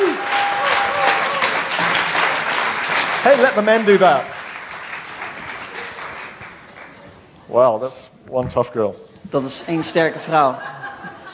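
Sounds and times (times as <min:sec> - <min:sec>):
audience applause at a church gathering: 0:00.0 - 0:07.0
speech: 0:03.2 - 0:04.3, 0:07.5 - 0:10.8
laughter: 0:09.6 - 0:11.3.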